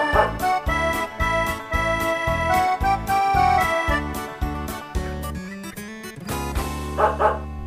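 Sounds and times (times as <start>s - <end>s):
person imitating a dog barking: 0.0s - 0.5s
music: 0.0s - 7.6s.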